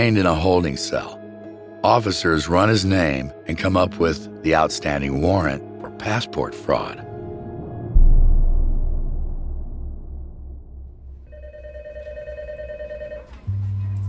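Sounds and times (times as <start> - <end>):
speech: 0.0 - 1.2, 1.8 - 7.0
low rumbling background: 6.8 - 11.3
deep low note: 7.0 - 11.3
heavy thud: 7.6 - 11.3
telephone ringing in a tiny office by an elevator shaft: 11.3 - 13.6.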